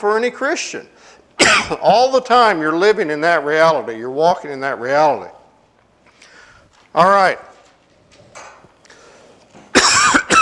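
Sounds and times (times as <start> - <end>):
speech: 0.0 - 5.4, 6.9 - 7.5
person giving a sermon coughing: 1.4 - 1.8, 9.7 - 10.4
rustling: 5.7 - 9.7
throat clearing: 9.7 - 10.4.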